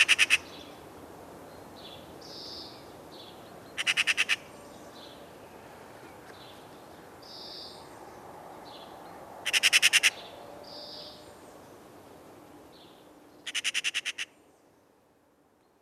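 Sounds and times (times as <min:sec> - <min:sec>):
Eurasian magpie harsh rattling calls: 0:00.0 - 0:00.5, 0:03.8 - 0:04.4, 0:09.5 - 0:10.2, 0:13.5 - 0:14.3.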